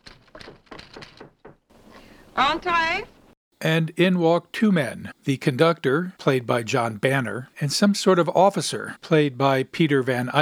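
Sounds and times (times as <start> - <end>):
knocking on a door: 0.4 - 1.7
speech: 2.4 - 10.3.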